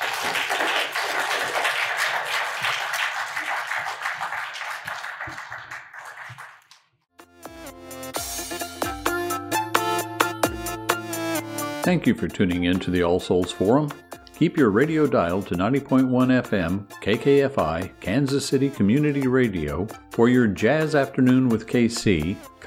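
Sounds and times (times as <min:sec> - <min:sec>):
crowd of people clapping: 0:00.0 - 0:06.9
bright instrumental music: 0:07.1 - 0:22.6
speech: 0:11.9 - 0:22.6.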